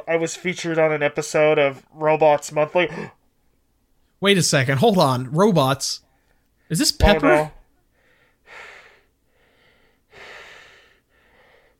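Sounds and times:
speech: 0.1 - 3.2, 4.2 - 6.0, 6.7 - 7.6
heavy rasping breathing: 7.9 - 11.7.

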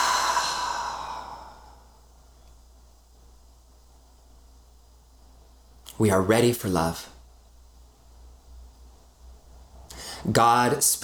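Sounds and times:
deep breath out during a guided meditation: 0.0 - 2.0, 9.9 - 10.3
speech: 6.0 - 7.2, 10.3 - 11.0.

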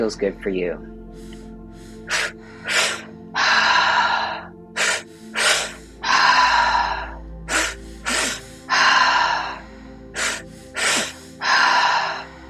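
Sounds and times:
speech: 0.0 - 1.4
quick sharp sniffing inhales during a breathing exercise: 1.1 - 12.4
long forceful breathy exhale during a breathing exercise: 1.2 - 12.4.

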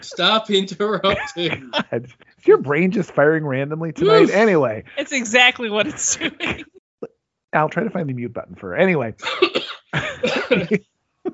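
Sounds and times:
harsh coughing and choking: 0.0 - 3.0, 3.9 - 4.9, 9.2 - 11.3
laughter: 0.0 - 6.8, 7.6 - 10.8
speech: 0.0 - 11.3.

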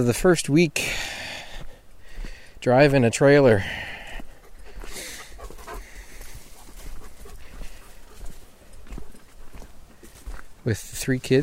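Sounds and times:
speech: 0.0 - 1.2, 2.6 - 3.9, 10.6 - 11.4
faint outdoor noise: 0.0 - 11.4
footsteps on a trail: 0.0 - 11.4
off-leash dog panting: 4.0 - 9.7.

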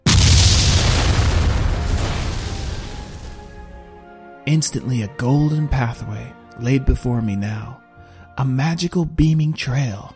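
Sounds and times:
thunderous magical explosion boom with deep low rumble: 0.0 - 4.0
speech: 4.5 - 7.8, 8.4 - 10.1.

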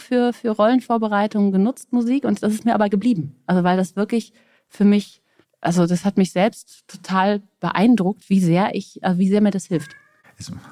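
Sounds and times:
speech: 0.1 - 10.7
cat meowing: 9.8 - 10.5.

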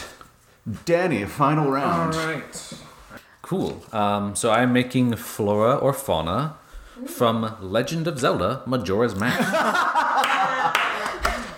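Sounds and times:
speech: 0.7 - 2.8, 3.5 - 9.9
people laughing and chuckling: 9.2 - 11.5
single loud hand clap: 10.2 - 11.5.

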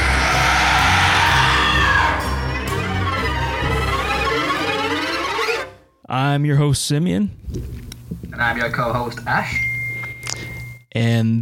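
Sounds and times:
several voices screaming and yelling sinisterly: 0.0 - 5.7
speech: 6.1 - 9.7, 10.9 - 11.3.

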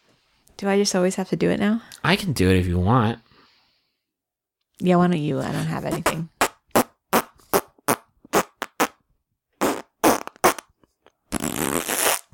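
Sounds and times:
speech: 0.6 - 3.3, 4.8 - 6.4
short loud sputtering fart noises: 5.9 - 9.0, 9.6 - 12.3.

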